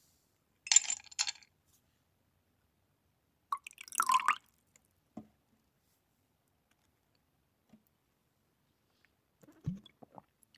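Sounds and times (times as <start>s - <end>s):
glassy clinks: 0.7s - 1.4s
bourbon splashing into a glass: 3.6s - 4.4s.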